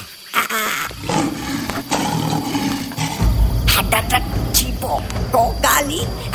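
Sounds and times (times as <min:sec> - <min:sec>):
lion roaring: 0:00.9 - 0:05.3
speech: 0:03.9 - 0:06.3.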